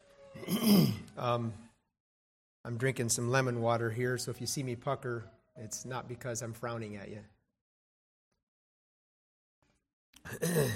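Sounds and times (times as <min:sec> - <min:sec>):
person with sinus drainage clearing throat: 0:00.4 - 0:01.1, 0:10.2 - 0:10.7
speech: 0:00.7 - 0:01.7, 0:02.6 - 0:07.4, 0:10.3 - 0:10.7.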